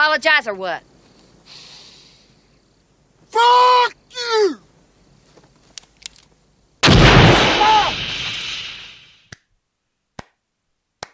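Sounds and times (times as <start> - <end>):
speech: 0.2 - 0.9, 3.3 - 4.6
massive roaring explosion: 6.8 - 9.1
sharp isolated gunshot cracks: 6.8 - 9.1.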